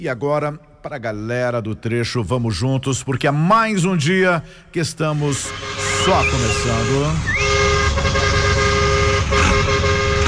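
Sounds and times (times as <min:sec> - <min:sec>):
speech: 0:00.0 - 0:07.4
car engine and road noise: 0:05.1 - 0:10.2
car horn honking: 0:05.4 - 0:10.2.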